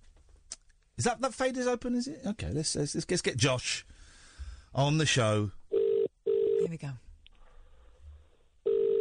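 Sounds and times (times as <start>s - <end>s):
speech: 1.0s - 3.9s, 4.7s - 5.6s, 6.6s - 7.0s
electronic phone ringback tones on an outgoing call: 5.7s - 6.6s, 8.6s - 8.9s.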